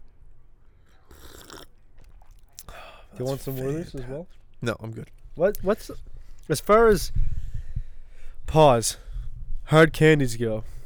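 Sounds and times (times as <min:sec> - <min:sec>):
faint mouth and swallowing noises: 0:00.8 - 0:03.2
slurping sip of peach lemonade tea: 0:00.8 - 0:03.6
speech: 0:03.2 - 0:07.3, 0:08.5 - 0:09.0, 0:09.7 - 0:10.7.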